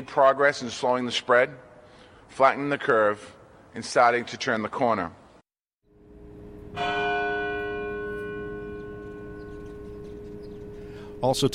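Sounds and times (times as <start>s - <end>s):
speech: 0.0s - 1.7s, 2.3s - 5.2s, 11.2s - 11.5s
single deep church bell strike: 5.9s - 11.5s.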